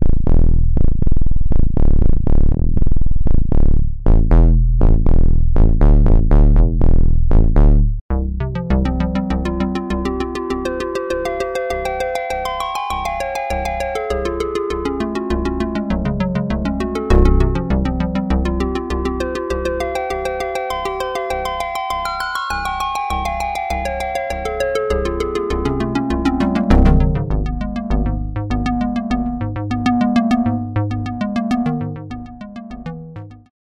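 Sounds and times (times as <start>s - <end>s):
analog synthesizer sub-bass: 0.0s - 33.5s.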